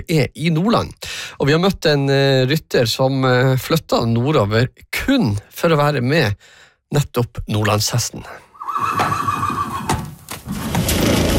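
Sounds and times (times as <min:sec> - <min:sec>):
speech: 0:00.0 - 0:09.5
horse neighing loudly: 0:08.5 - 0:10.1
horse snorting breathily: 0:08.6 - 0:10.0.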